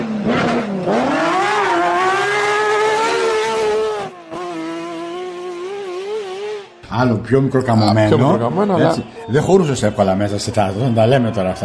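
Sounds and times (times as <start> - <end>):
Lancia Stratos sports car engine revving: 0.0 - 6.8
speech: 7.0 - 11.6.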